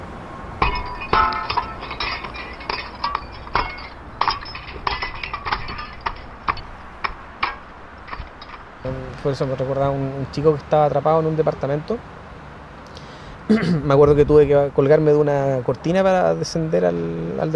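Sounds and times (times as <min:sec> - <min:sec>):
glass shards tinkling: 0:00.6 - 0:09.0
window glass shattering: 0:00.6 - 0:09.0
speech: 0:09.2 - 0:12.2, 0:13.5 - 0:17.5.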